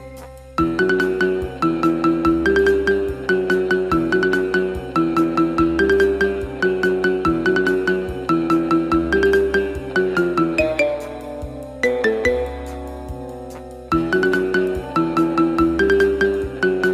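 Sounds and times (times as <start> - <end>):
marimba ringtone: 0.7 - 12.6, 13.9 - 16.9.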